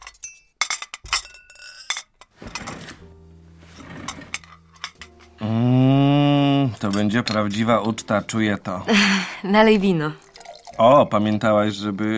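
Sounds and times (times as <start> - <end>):
utensils clinking against dishes and glassware at dinner: 0.0 - 3.0, 3.7 - 5.4, 6.7 - 8.1
speech: 6.8 - 10.2, 10.8 - 12.1.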